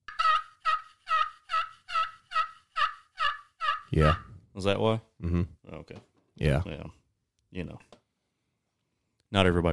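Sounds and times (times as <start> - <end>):
person imitating a turkey gobble to call birds: 0.1 - 4.3
speech: 3.9 - 8.0, 9.3 - 9.7.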